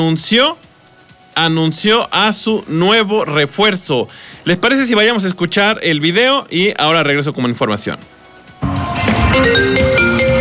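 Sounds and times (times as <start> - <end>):
speech: 0.0 - 0.7, 1.4 - 8.2
bright melodic electronic phone ringtone for an incoming call: 8.7 - 10.3.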